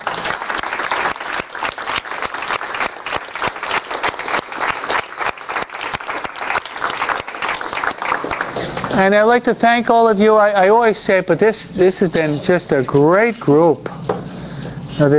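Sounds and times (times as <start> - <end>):
room full of people applauding: 0.0 - 9.0
speech: 9.0 - 13.9, 15.0 - 15.1.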